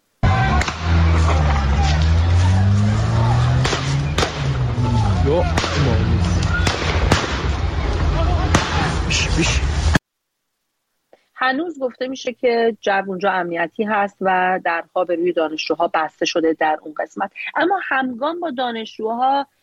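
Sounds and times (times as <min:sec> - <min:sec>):
agitated crowd of worried families shouting and talking in Tehran: 0:00.2 - 0:09.9
sharp gunshots at a protest gathering in Tehran: 0:00.4 - 0:02.1, 0:03.4 - 0:04.8, 0:05.4 - 0:07.8, 0:08.4 - 0:09.1
speech: 0:11.4 - 0:19.6.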